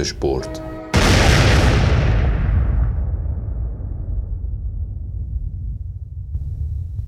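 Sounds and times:
speech: 0.0s - 0.7s
massive explosion with long deep rumbling decay: 0.9s - 6.4s.

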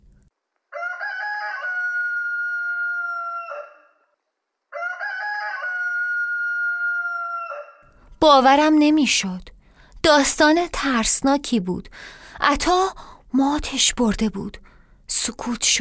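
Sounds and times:
rooster crowing at dawn: 0.7s - 7.8s
speech: 8.2s - 15.7s.

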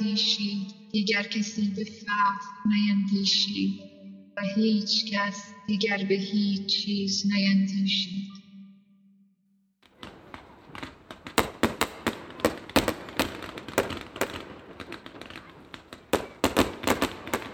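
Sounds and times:
speech: 0.1s - 8.3s
dense barrage of firecracker cracks: 9.9s - 17.5s
grenade blasts: 9.9s - 17.5s.

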